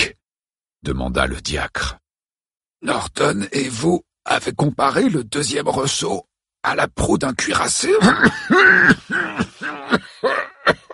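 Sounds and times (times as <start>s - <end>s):
speech: 0.8s - 2.0s, 2.8s - 10.4s
person in a hoarse hacking coughing fit: 8.0s - 10.9s.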